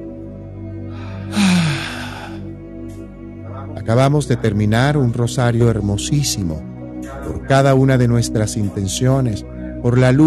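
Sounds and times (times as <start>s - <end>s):
deep breath drawn in close to the microphone: 0.9s - 2.5s
speech: 3.9s - 6.7s, 7.3s - 10.2s.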